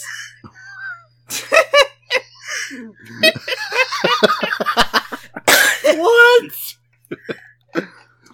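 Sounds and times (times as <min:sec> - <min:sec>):
person laughing: 0:00.1 - 0:05.5
speech: 0:02.7 - 0:03.6, 0:04.2 - 0:04.9
person coughing harshly after laughing: 0:05.5 - 0:06.0.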